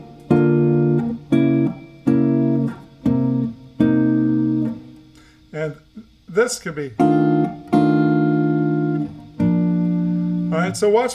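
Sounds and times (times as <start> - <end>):
guitar strumming a B flat chord for a blues tune: 0.0 - 5.6, 6.8 - 11.1
speech: 6.4 - 7.3, 10.7 - 11.1.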